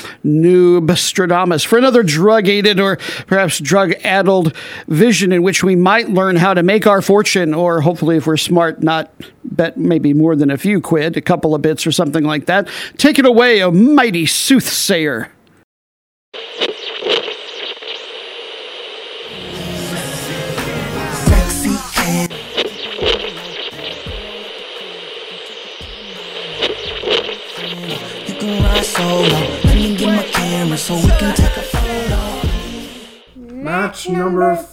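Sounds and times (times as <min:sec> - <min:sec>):
speech: 0:00.2 - 0:15.4, 0:30.6 - 0:32.2, 0:33.6 - 0:34.7
radio static interference hissing and crackling: 0:16.4 - 0:33.3
steady high-pitched radio whine: 0:16.4 - 0:33.4.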